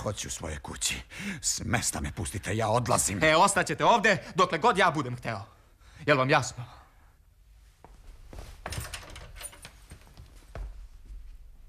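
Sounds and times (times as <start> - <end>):
speech: 0.0 - 6.8
key turning in a door lock: 8.6 - 10.0.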